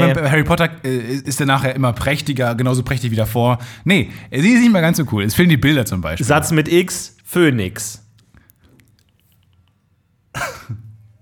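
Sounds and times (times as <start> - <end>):
speech: 0.0 - 8.0
deliberate dry cough to mark a bad joke: 10.3 - 11.0.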